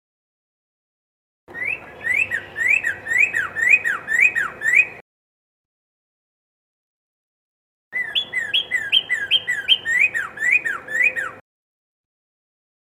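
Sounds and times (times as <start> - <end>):
Red-crested cardinal song of whistled rising-falling notes: 1.5 - 5.0, 8.0 - 11.4.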